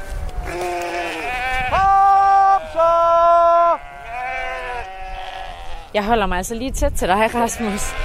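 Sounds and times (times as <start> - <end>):
flock of sheep bleating: 0.4 - 6.0, 7.2 - 8.0
speech: 6.0 - 8.0.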